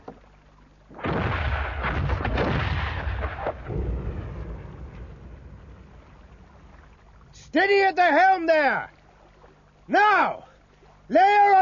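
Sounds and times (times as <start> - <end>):
ship's cannons firing a salvo: 1.0 - 5.7
speech: 7.6 - 8.9, 9.9 - 10.4, 11.1 - 11.6.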